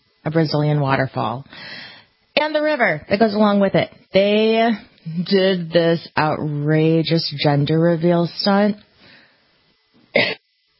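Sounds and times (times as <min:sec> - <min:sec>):
speech: 0:00.2 - 0:08.9, 0:10.1 - 0:10.4
faint breath: 0:01.5 - 0:02.2, 0:09.0 - 0:09.6
adult with allergies and asthma coughing: 0:10.1 - 0:10.4.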